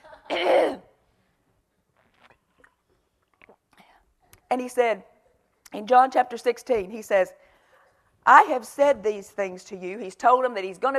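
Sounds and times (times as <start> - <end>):
throat clearing: 0.2 - 0.9
speech: 4.5 - 5.1, 5.7 - 7.4, 8.2 - 10.9.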